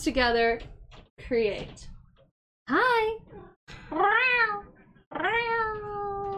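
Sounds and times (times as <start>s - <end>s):
speech: 0.0s - 1.9s, 2.7s - 5.9s
person imitating a cat meowing: 3.9s - 6.3s.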